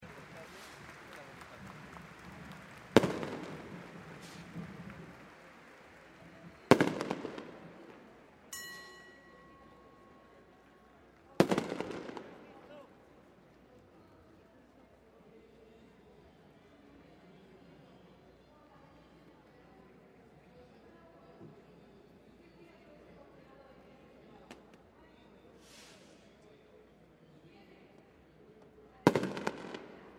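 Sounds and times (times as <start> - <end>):
firecrackers exploding at a procession: 0.0 - 8.2, 11.4 - 12.7, 29.1 - 30.1.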